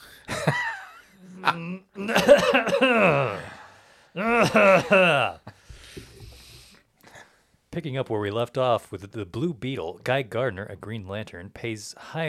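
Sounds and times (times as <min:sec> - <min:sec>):
speech: 0:01.4 - 0:03.1, 0:07.8 - 0:12.2
person clearing throat: 0:01.4 - 0:05.5.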